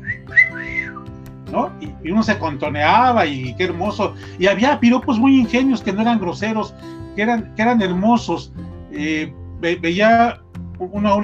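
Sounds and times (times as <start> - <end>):
person whistling a wolf whistle: 0.0 - 1.2
speech: 1.5 - 11.2.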